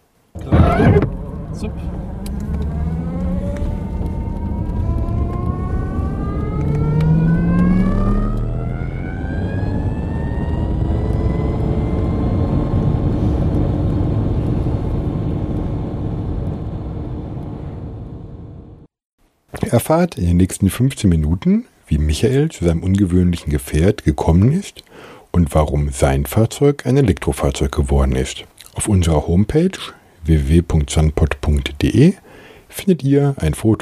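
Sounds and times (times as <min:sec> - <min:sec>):
cabin motorcycle support wheels retracting clunk: 0:00.4 - 0:01.3
cabin motorcycle pulling away with rising whine and engine drone: 0:00.4 - 0:18.0
speech: 0:01.6 - 0:02.3, 0:19.9 - 0:33.8.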